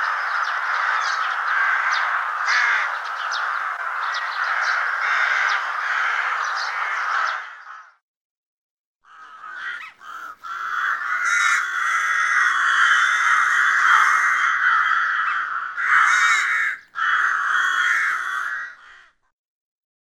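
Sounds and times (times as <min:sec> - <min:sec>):
rook making grating raspy caws in Russia: 0:00.0 - 0:08.0, 0:09.0 - 0:19.3.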